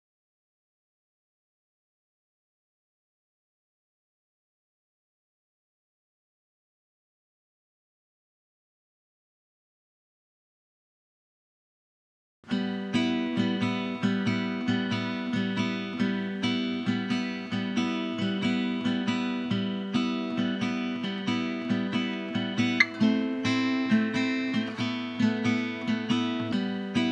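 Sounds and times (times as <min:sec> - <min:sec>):
backing guitar in E minor: 0:12.5 - 0:27.1.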